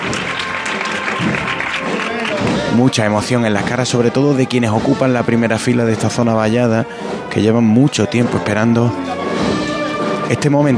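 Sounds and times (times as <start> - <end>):
crowd applauding in a street during a Holy Monday procession in Seville: 0.0 - 3.9
speech: 2.8 - 9.2, 10.3 - 10.7.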